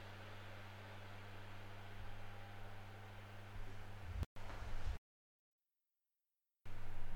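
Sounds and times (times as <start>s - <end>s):
overheating laptop fan whirring loudly: 0.0s - 5.0s, 6.7s - 7.1s.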